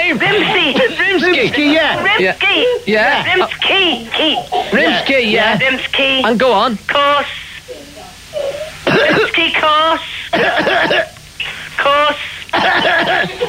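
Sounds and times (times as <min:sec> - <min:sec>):
laughter: 0:00.0 - 0:05.8, 0:12.0 - 0:13.4
speech: 0:01.4 - 0:07.4
person giving loud rough coughs: 0:04.0 - 0:05.1, 0:08.8 - 0:09.4, 0:10.3 - 0:11.2, 0:12.5 - 0:13.4
person giving throat-clearing hacks: 0:08.8 - 0:09.4, 0:10.3 - 0:11.2, 0:12.6 - 0:13.4.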